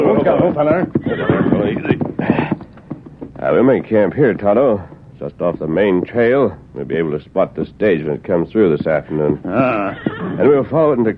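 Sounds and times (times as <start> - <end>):
horses whinnying in Red Rock Canyon: 0.0 - 3.2, 9.1 - 10.7
horse hoof clops as riders halt them: 0.0 - 6.4, 8.5 - 11.0
speech: 0.3 - 1.8, 3.5 - 11.1.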